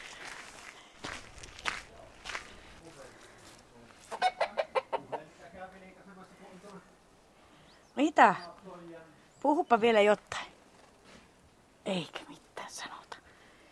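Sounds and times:
hens clucking: 4.0s - 5.7s
speech: 8.2s - 8.5s, 9.4s - 10.3s, 11.9s - 12.2s.

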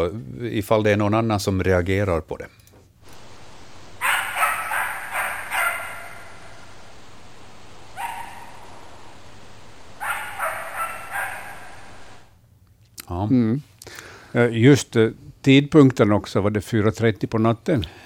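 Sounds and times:
speech: 0.0s - 2.6s, 13.2s - 18.0s
steady low hum: 3.0s - 12.5s
animal barking yelps, possibly a wolf: 4.0s - 6.8s, 7.9s - 9.1s, 10.0s - 12.3s.

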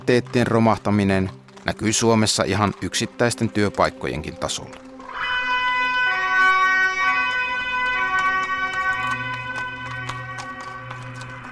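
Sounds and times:
speech: 0.1s - 4.9s
emergency vehicle siren wailing at a red-brick fire station: 4.5s - 11.5s.

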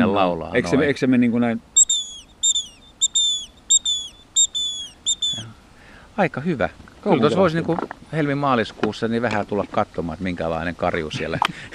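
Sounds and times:
speech: 0.2s - 1.7s, 6.2s - 11.7s
person imitating a great tit's whistled three-part song: 1.8s - 5.5s.

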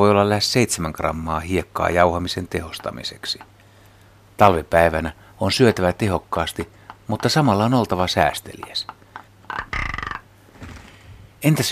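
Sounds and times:
speech: 0.0s - 3.6s, 4.4s - 9.6s, 11.4s - 11.7s
rock ptarmigan croaking: 6.8s - 10.8s
rock ptarmigan low calls: 9.0s - 10.9s.

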